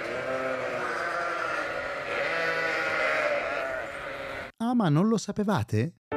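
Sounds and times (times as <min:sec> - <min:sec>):
sheep bleating: 0:00.0 - 0:04.5
speech: 0:04.8 - 0:06.0.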